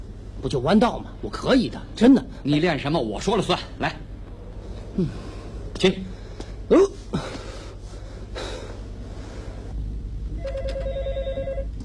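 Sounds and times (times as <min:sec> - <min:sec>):
steady low hum: 0:00.0 - 0:11.8
speech: 0:00.4 - 0:04.1, 0:05.0 - 0:06.1, 0:06.7 - 0:07.0
breathy noises: 0:04.6 - 0:09.8
telephone ringing: 0:10.4 - 0:11.7.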